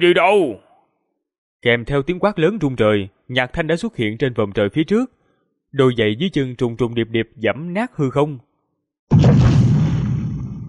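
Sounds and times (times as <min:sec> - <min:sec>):
speech: 0:00.0 - 0:00.6, 0:01.6 - 0:08.5
huge earth-shaking explosion with rumbling roar: 0:09.1 - 0:10.6.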